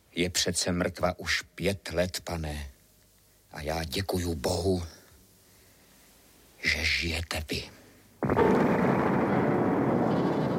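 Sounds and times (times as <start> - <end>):
speech: 0.2 - 2.7, 3.6 - 5.0, 6.6 - 8.8
massive explosion at a castle: 8.2 - 10.5.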